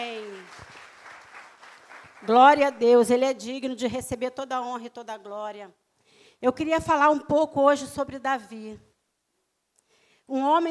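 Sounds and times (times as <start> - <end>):
audience applauding: 0.0 - 2.8
speech: 2.2 - 5.8, 6.4 - 8.9, 10.3 - 10.7.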